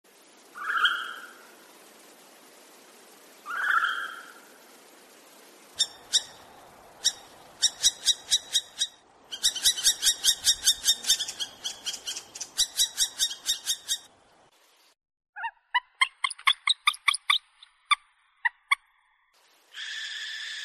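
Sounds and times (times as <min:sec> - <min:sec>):
northern hawk-owl calling: 0:03.4 - 0:04.4, 0:05.8 - 0:14.1, 0:15.4 - 0:18.8, 0:19.8 - 0:20.6.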